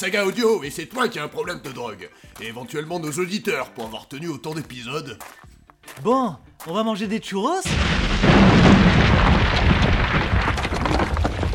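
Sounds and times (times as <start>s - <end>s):
speech: 0.0s - 8.2s
TNT explosion blowing up a senate building: 7.7s - 11.5s.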